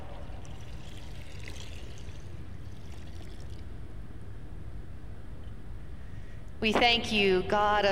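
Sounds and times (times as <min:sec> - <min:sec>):
water rushing and pouring with splashing: 0:00.0 - 0:03.8
speech: 0:06.6 - 0:07.9.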